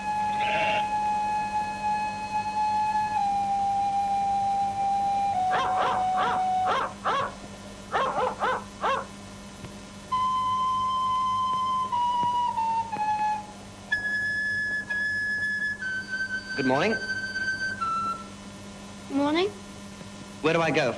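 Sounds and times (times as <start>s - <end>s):
low steady hum: 0.0s - 20.9s
dogs howling: 5.4s - 9.1s
speech: 16.6s - 17.1s, 19.3s - 19.6s, 20.4s - 20.9s.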